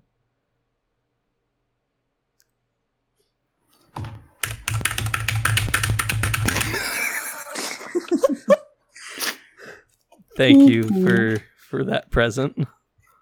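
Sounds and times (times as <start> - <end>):
mechanical keyboard with clicky jade switches being typed on: 4.0 - 7.0
laughter: 6.6 - 8.7
speech: 10.4 - 12.8.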